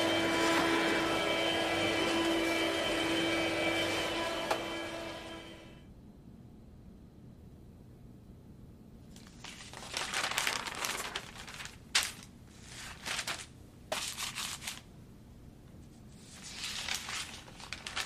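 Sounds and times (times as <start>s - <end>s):
vacuum cleaner running on a carpet: 0.0s - 5.8s
newspaper pages rustling at a table at home: 9.1s - 14.9s, 16.1s - 18.0s.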